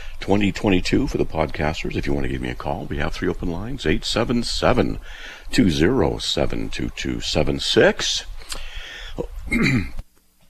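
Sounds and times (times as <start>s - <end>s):
speech: 0.2s - 10.0s
harsh cough with throat clearing: 9.2s - 10.0s.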